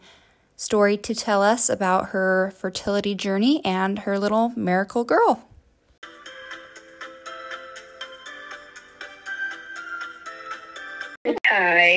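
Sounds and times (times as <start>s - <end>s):
speech: 0.6s - 5.5s
melodic phone ringtone: 6.0s - 11.2s.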